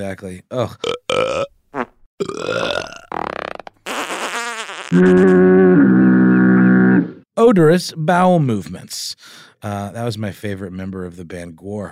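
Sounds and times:
speech: 0.0 - 1.5, 4.9 - 5.4, 7.5 - 11.9
burp sound effects: 0.8 - 4.0, 4.9 - 7.3.

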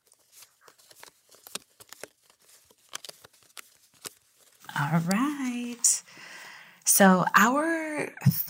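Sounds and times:
deck of affirmation cards being shuffled: 0.0 - 5.9
speech: 4.8 - 6.1, 7.0 - 8.4.

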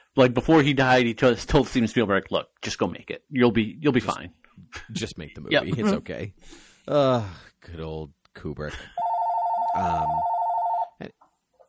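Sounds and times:
speech: 0.2 - 9.1, 9.8 - 10.3
phone electronic ringtone: 9.0 - 11.0.

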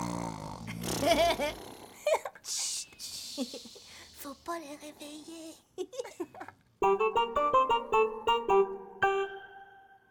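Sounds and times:
person imitating a snore: 0.0 - 2.1
speech: 1.0 - 2.7, 3.4 - 8.9.

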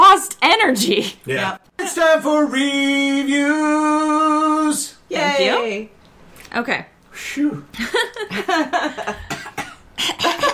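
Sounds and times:
speech: 0.4 - 9.4
laughter: 7.8 - 9.3, 10.0 - 10.5
person coughing: 9.0 - 10.5.

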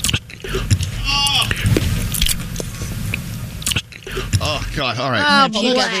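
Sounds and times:
loud open-mouthed chewing with wet smacking: 0.0 - 4.8
speech: 4.2 - 5.9.

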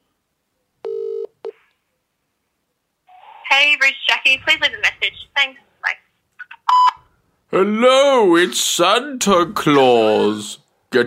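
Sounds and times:
speech: 3.6 - 5.7, 7.5 - 11.0
telephone dialing tones from a phone: 6.6 - 7.0.

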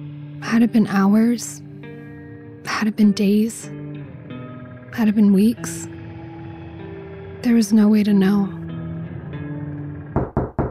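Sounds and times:
speech: 0.4 - 1.6, 2.7 - 3.8, 4.9 - 5.9, 7.4 - 8.6
sharp knocks on a door: 10.2 - 10.6.

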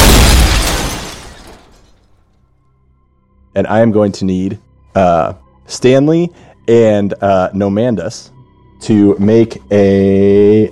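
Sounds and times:
loud explosion: 0.0 - 1.7
speech: 3.6 - 10.7.

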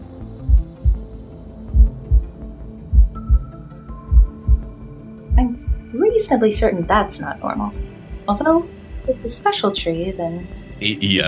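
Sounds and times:
low droning hum: 0.0 - 9.3
heartbeat thumping: 0.4 - 1.1, 1.7 - 9.4
speech: 6.2 - 11.2.

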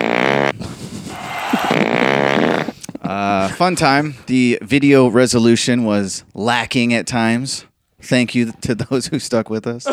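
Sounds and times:
loud buzzy fart sound effect: 0.0 - 3.2
speech: 3.6 - 9.9.

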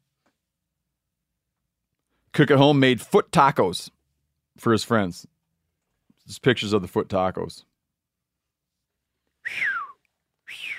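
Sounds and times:
speech: 2.4 - 4.0, 4.6 - 5.3, 6.3 - 7.7, 9.5 - 9.7
person whistling an impressed whistle: 9.4 - 10.7.

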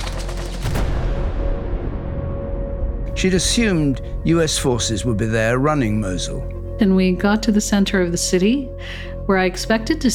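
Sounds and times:
rapid gunfire: 0.0 - 0.9
rumbling noise of gunfire: 0.6 - 6.0
speech: 3.2 - 10.1.

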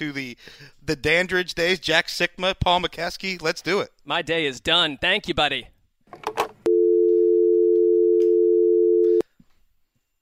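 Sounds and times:
speech: 0.0 - 6.3
telephone dial tone after hanging up: 6.7 - 9.2.

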